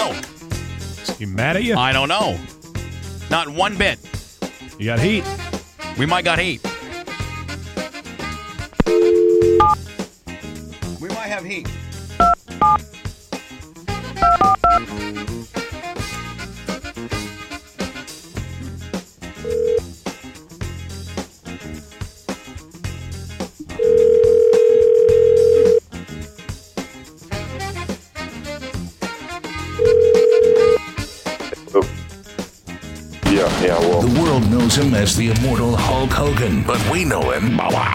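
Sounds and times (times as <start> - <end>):
busy music bed: 0.0 - 37.6
speech: 1.2 - 2.6, 3.3 - 4.1, 4.8 - 5.4, 6.0 - 6.7, 11.3 - 12.9, 34.8 - 37.9
telephone keypad tones: 8.8 - 9.8, 12.2 - 12.8, 14.2 - 14.8, 19.5 - 19.8, 23.8 - 25.8, 29.9 - 30.8.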